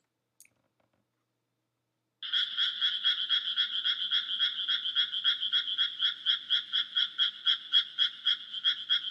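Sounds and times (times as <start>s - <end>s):
frog croaking in raspy pulsed croaks: 2.2s - 9.0s.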